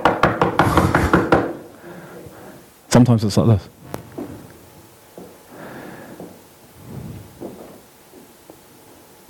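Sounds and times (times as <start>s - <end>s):
firm knocking on wooden door: 0.0s - 1.6s
speech: 3.0s - 3.8s.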